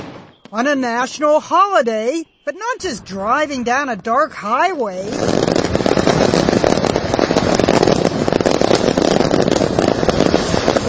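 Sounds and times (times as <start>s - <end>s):
fireworks exploding: 0.0s - 1.0s, 2.5s - 10.8s
speech: 0.5s - 5.6s.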